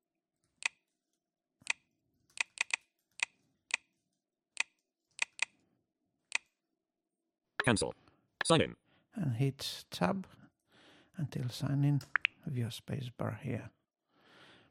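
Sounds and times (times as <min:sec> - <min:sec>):
keystrokes on a computer keyboard typing an email password: 0:01.6 - 0:03.9, 0:04.6 - 0:05.5
speech: 0:07.7 - 0:10.4, 0:11.2 - 0:13.8.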